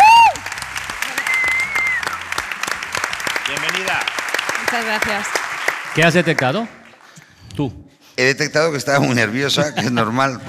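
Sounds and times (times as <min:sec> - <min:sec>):
audience applause with many hands clapping: 0:00.0 - 0:07.2
loud whistle-like tone: 0:01.2 - 0:02.2
speech: 0:04.7 - 0:05.4, 0:06.0 - 0:06.8, 0:07.6 - 0:10.4.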